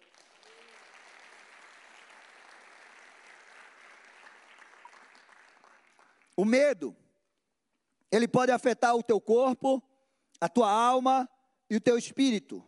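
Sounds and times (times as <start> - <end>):
congregation applauding: 0.0 - 6.8
speech: 6.4 - 7.0, 8.1 - 12.6.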